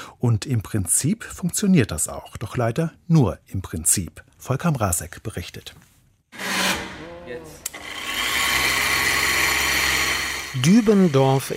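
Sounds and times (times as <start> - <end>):
speech: 0.2 - 5.9, 10.5 - 11.5
hand-blender-like kitchen mixing machine whirring in a workshop hall lab in Dübendorf: 7.7 - 11.5.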